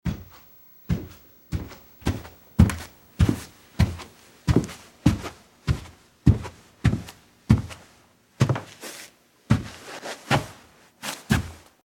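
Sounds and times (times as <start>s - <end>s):
footsteps going up stairs: 0.1s - 10.6s, 11.3s - 11.7s.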